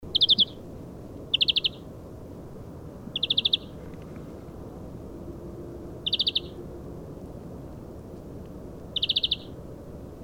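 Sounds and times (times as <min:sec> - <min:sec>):
faint low background hum: 0:00.0 - 0:10.2
European greenfinch Chloris chloris chirping call: 0:00.1 - 0:00.6, 0:01.3 - 0:01.9, 0:03.1 - 0:03.8, 0:06.0 - 0:06.6, 0:08.9 - 0:09.6.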